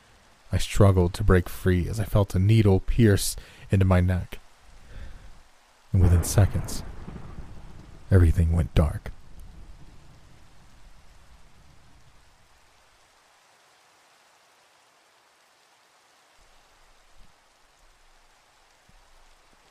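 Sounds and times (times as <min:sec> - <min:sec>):
steady hissing rain falling: 0:00.0 - 0:19.6
speech: 0:00.6 - 0:04.4, 0:05.9 - 0:06.9, 0:08.1 - 0:09.2
deep roll of thunder: 0:06.0 - 0:12.3.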